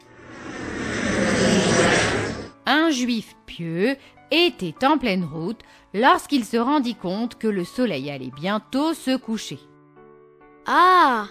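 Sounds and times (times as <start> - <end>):
airplane engine roaring overhead: 0.0 - 2.6
speech: 2.9 - 9.7, 10.6 - 11.3.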